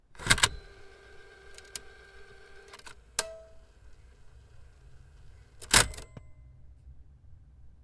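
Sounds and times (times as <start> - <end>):
car stereo tape deck: 0.2 - 6.2.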